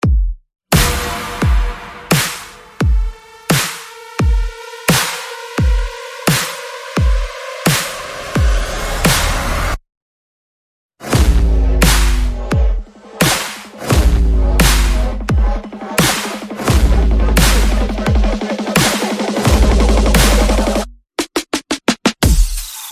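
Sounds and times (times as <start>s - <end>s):
beat drop: 0.0s - 9.7s, 13.9s - 20.9s
percussion: 0.0s - 9.8s, 11.0s - 22.9s.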